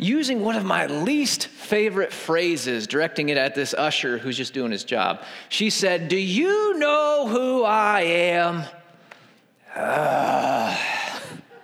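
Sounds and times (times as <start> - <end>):
speech: 0.0 - 8.8, 9.8 - 10.9
audience members groaning in disapproval at a rude patron: 9.7 - 11.6.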